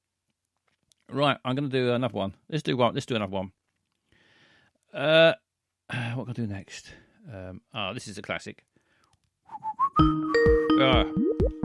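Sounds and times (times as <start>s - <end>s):
speech: 1.1s - 3.6s, 4.9s - 8.7s, 9.5s - 11.6s
person whistling a tune: 9.5s - 11.6s.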